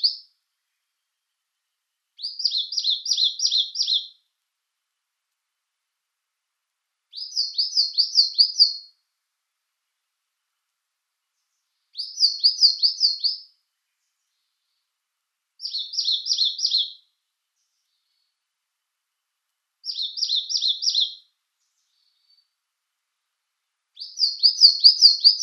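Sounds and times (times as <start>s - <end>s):
Eastern crowned warbler song: 0.0s - 4.4s, 7.1s - 9.2s, 11.1s - 18.7s, 19.8s - 25.4s.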